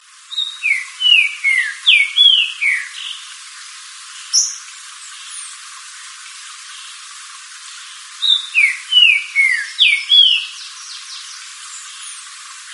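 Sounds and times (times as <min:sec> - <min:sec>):
Green-winged saltator song: 0:00.3 - 0:03.2, 0:04.3 - 0:04.7, 0:08.2 - 0:11.4.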